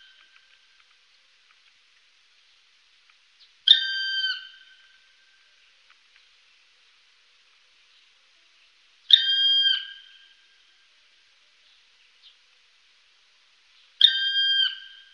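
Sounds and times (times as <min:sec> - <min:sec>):
black woodpecker whistled calls: 0:03.7 - 0:05.0, 0:09.1 - 0:10.3, 0:14.0 - 0:15.1.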